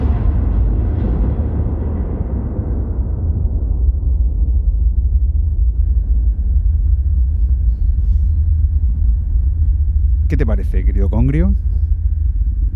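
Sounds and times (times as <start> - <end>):
droning film soundtrack music with deep rumbling low tones: 0.0 - 12.7
speech: 10.7 - 11.8.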